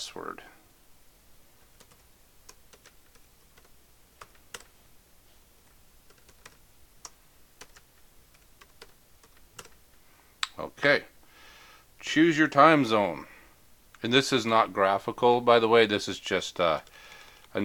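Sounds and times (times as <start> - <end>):
speech: 0.0 - 0.6, 10.8 - 11.1, 12.1 - 13.3, 14.0 - 17.6
faint steady hum: 0.0 - 17.6
typing on a computer keyboard: 1.8 - 4.7, 6.1 - 9.8.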